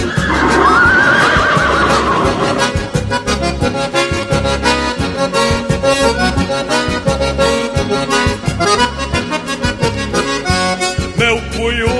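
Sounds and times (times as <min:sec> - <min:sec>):
stallion neighing: 0:00.0 - 0:03.1
busy rhythmic music with a steady beat: 0:00.1 - 0:11.9.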